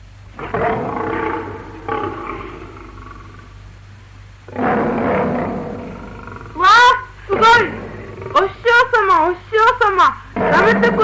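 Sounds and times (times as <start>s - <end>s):
low steady hum: 0.0s - 11.0s
lion roaring: 0.4s - 3.6s, 4.5s - 8.6s, 10.4s - 11.0s
speech: 10.0s - 11.0s.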